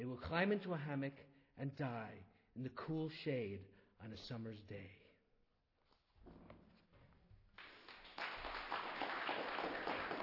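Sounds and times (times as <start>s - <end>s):
speech: 0.0s - 5.0s, 6.2s - 6.6s
audience clapping: 7.5s - 10.2s.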